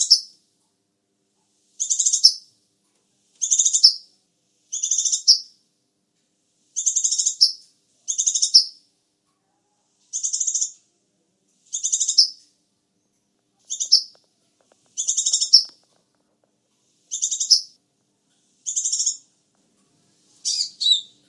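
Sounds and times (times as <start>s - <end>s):
sunbird chirping song of high thin trilled bursts: 0.0s - 0.4s, 1.8s - 2.5s, 3.4s - 4.1s, 4.7s - 5.5s, 6.8s - 8.8s, 10.1s - 10.8s, 11.7s - 12.4s, 13.7s - 14.2s, 15.0s - 15.7s, 17.1s - 17.8s, 18.6s - 19.2s, 20.4s - 21.2s.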